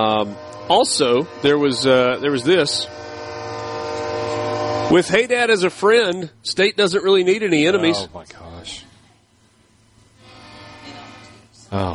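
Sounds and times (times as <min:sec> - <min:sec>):
speech: 0:00.0 - 0:03.2, 0:04.9 - 0:08.8, 0:11.7 - 0:11.9
loud sustained train horn sound effect: 0:00.0 - 0:06.1, 0:10.2 - 0:11.6.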